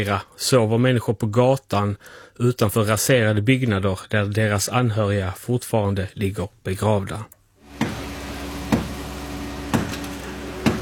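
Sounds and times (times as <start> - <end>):
speech: 0.0 - 7.4
hammer striking concrete of a collapsed house in La Guaira: 7.8 - 9.0, 9.7 - 10.7.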